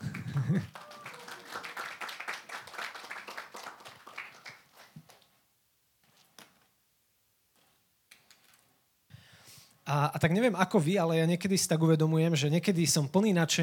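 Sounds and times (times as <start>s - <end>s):
audience applause: 0.0s - 4.9s
scattered claps: 0.0s - 5.2s
speech: 0.5s - 0.8s, 9.9s - 13.6s.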